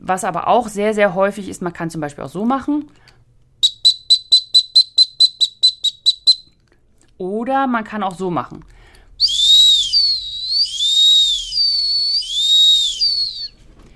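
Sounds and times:
speech: 0:00.0 - 0:03.2, 0:07.2 - 0:08.7
dog training whistle blasts: 0:03.6 - 0:06.5, 0:09.2 - 0:13.6.

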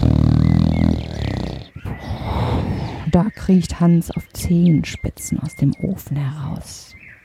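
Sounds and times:
giant snoring loudly: 0:00.0 - 0:03.1
speech: 0:03.1 - 0:07.0.

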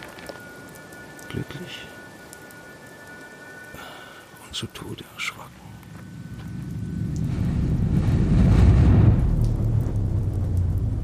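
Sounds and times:
steady rain hissing: 0:00.0 - 0:11.0
speech: 0:01.3 - 0:02.0, 0:03.8 - 0:05.7
heavy deep rumble: 0:06.0 - 0:11.0.

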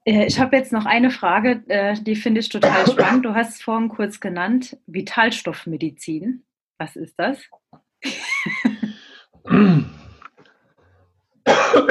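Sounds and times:
speech: 0:00.0 - 0:08.6, 0:09.5 - 0:10.0
faint throat noises: 0:02.6 - 0:03.2, 0:08.8 - 0:10.5
person coughing: 0:02.6 - 0:03.3, 0:08.7 - 0:10.2, 0:11.5 - 0:11.8.

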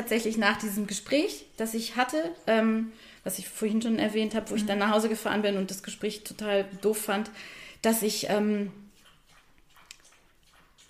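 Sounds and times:
speech: 0:00.0 - 0:08.8
dog lapping drinking water: 0:08.9 - 0:10.8.

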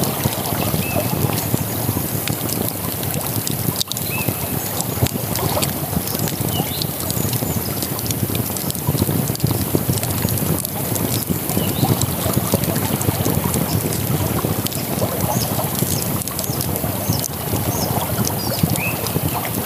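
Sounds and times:
campfire crackling: 0:00.0 - 0:19.6
birds chirping: 0:00.1 - 0:01.8, 0:03.9 - 0:05.5, 0:11.0 - 0:14.0, 0:14.6 - 0:19.6.

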